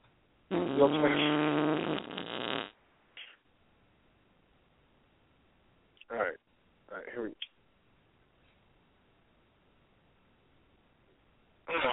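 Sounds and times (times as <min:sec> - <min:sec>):
long buzzy fart sound effect: 0:00.5 - 0:02.8, 0:11.7 - 0:11.9
speech: 0:00.8 - 0:02.2.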